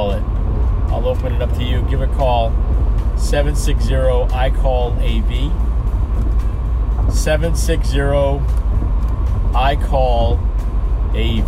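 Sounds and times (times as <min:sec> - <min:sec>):
low rumble of road and engine noise in a moving car cabin: 0:00.0 - 0:11.4
speech: 0:01.0 - 0:06.3, 0:07.1 - 0:08.6, 0:09.5 - 0:10.5, 0:11.1 - 0:11.4.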